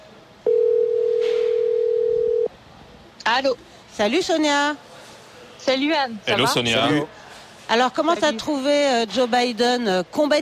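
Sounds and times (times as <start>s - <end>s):
telephone dial tone while a call is being placed: 0.5s - 2.5s
speech: 3.3s - 4.9s, 5.6s - 10.4s.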